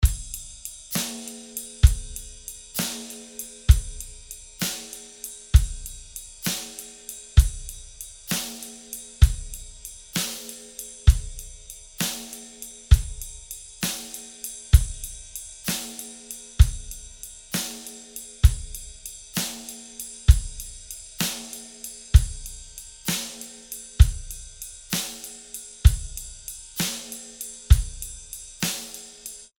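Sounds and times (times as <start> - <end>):
bebop full drum kit: 0.0 - 29.5.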